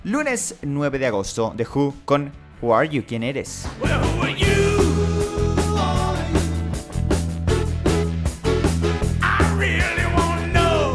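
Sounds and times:
speech: 0:00.0 - 0:04.7
loud driving rock music: 0:03.4 - 0:10.9.

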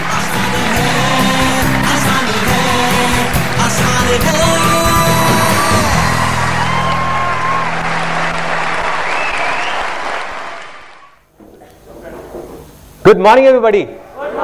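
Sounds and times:
large seminar audience applause: 0:00.0 - 0:11.3
whoops and yells from a seminar audience: 0:05.6 - 0:07.9
speech: 0:13.1 - 0:14.0.

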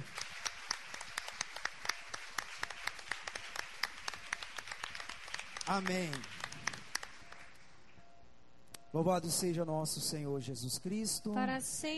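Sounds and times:
church audience applauding during worship: 0:00.0 - 0:07.6
speech: 0:05.7 - 0:06.4, 0:08.9 - 0:11.9.

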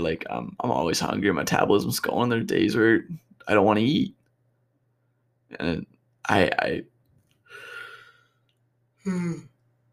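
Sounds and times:
speech: 0:00.0 - 0:04.2, 0:05.5 - 0:06.9, 0:09.0 - 0:09.5
person yawning: 0:09.0 - 0:09.6.

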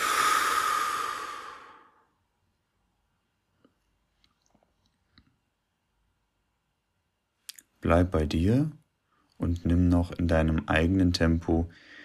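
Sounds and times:
deep exhale during breathing exercise: 0:00.0 - 0:02.2
speech: 0:07.9 - 0:08.8, 0:09.4 - 0:11.9.

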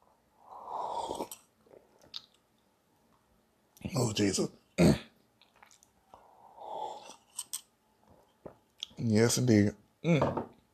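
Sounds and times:
person slurping tea: 0:00.4 - 0:01.9, 0:06.2 - 0:07.5
speech: 0:03.9 - 0:05.0, 0:09.2 - 0:10.5.

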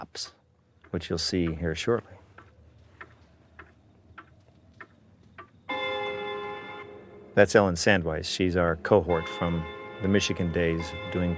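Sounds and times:
speech: 0:00.2 - 0:02.2, 0:07.4 - 0:11.3
grandfather clock ticking: 0:00.7 - 0:11.3
grandfather clock chime ringing: 0:05.7 - 0:07.9, 0:08.8 - 0:11.3.

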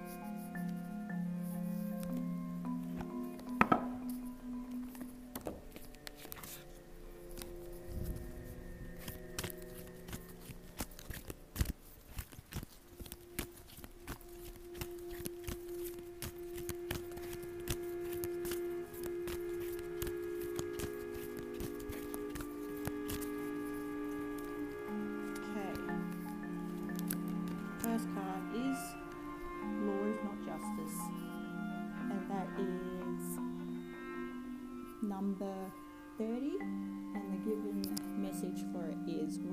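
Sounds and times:
steady music with sustained tones: 0:00.0 - 0:39.5
tarot cards being shuffled: 0:01.4 - 0:31.4.

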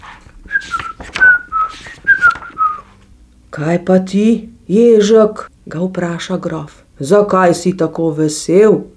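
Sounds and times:
hedgehog whistling a cheerful bouncy melody under a pear tree in a forest: 0:00.5 - 0:02.9
speech: 0:03.6 - 0:08.9.

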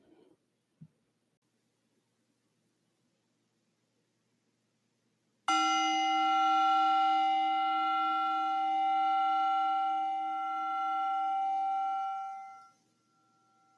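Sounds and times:
meditation bell struck to signal the beginning of a meditation: 0:05.5 - 0:13.7.

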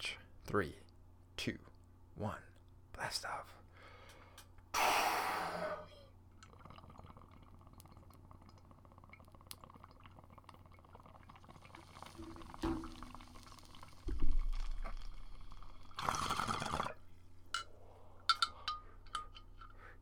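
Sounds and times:
speech: 0:00.0 - 0:03.6
quiet breathy exhaling of smoke: 0:03.8 - 0:06.1
sharp bubbling hit of smoke being inhaled: 0:04.8 - 0:17.1.

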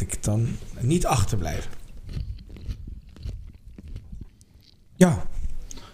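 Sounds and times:
speech: 0:00.2 - 0:01.8, 0:05.0 - 0:05.3
crunchy bites and chewing of a pickle: 0:01.1 - 0:05.0.

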